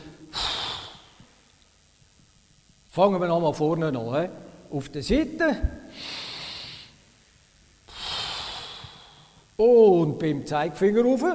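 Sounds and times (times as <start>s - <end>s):
deep breath: 0.3s - 1.2s, 5.9s - 7.0s, 7.9s - 9.5s
speech: 3.0s - 6.2s, 9.6s - 11.3s.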